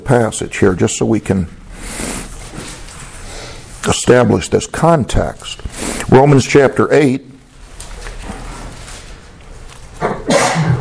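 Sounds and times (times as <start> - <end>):
faint noise: 0.0 - 10.7
speech: 0.1 - 2.2, 4.0 - 7.3
single sharp loud sneeze: 10.2 - 10.7.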